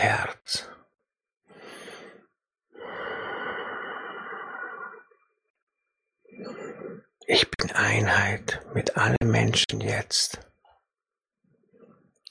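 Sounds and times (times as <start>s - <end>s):
speech: 0.0s - 0.7s, 7.3s - 10.5s
slow breathing in and out during a guided meditation: 1.5s - 5.6s, 6.2s - 7.2s.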